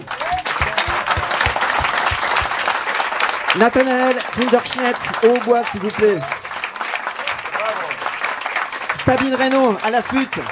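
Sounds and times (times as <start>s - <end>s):
audience applauding at an evening concert: 0.0s - 10.4s
rhythmic low thumps: 0.3s - 2.7s
speech: 3.6s - 6.4s, 9.0s - 10.4s.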